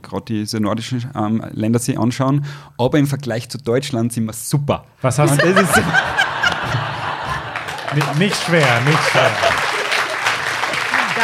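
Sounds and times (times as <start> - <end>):
speech: 0.0 - 6.3, 7.9 - 9.6
laughter: 5.2 - 11.2
crowd applauding: 5.3 - 11.2.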